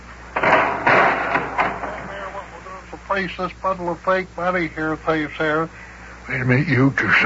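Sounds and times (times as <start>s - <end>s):
office door opening with a clattering rattling burst: 0.4s - 2.2s
speech: 3.1s - 7.2s.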